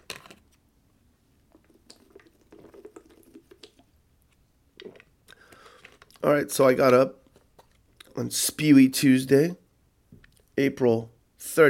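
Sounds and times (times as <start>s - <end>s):
person sipping bottled water from a bottle: 1.5s - 3.9s, 4.8s - 6.2s
swallowing: 1.5s - 3.9s, 4.8s - 6.2s
speech: 6.2s - 7.2s, 8.2s - 9.6s, 10.6s - 11.6s.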